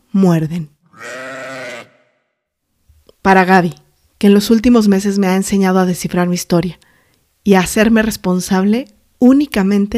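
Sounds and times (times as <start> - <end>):
speech: 0.1 - 0.8, 3.3 - 9.9
sheep bleating: 0.9 - 2.2.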